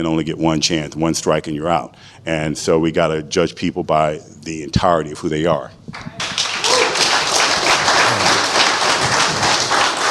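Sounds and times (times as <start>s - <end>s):
speech: 0.0s - 6.3s
crowd applauding: 6.0s - 10.0s.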